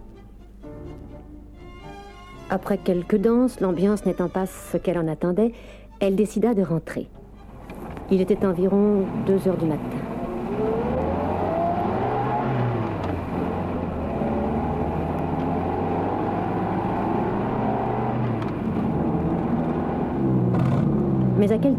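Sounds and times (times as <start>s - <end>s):
speech: 2.5s - 7.2s, 8.1s - 10.0s, 21.4s - 21.7s
car engine driving at night heard from inside: 7.4s - 21.7s.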